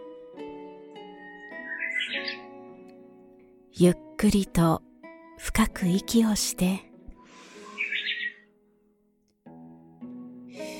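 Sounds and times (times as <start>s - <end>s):
birds chirping and trilling: 1.0s - 2.8s, 7.2s - 8.5s
speech: 3.8s - 4.8s, 5.4s - 6.9s.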